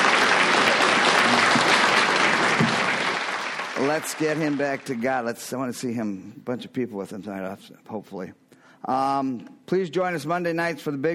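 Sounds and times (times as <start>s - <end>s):
audience applause: 0.0s - 5.0s
speech: 3.8s - 11.1s.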